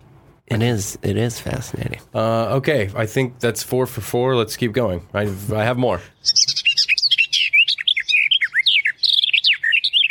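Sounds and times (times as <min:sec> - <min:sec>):
speech: 0:00.5 - 0:06.4
European songbird singing, possibly a warbler: 0:06.0 - 0:10.0.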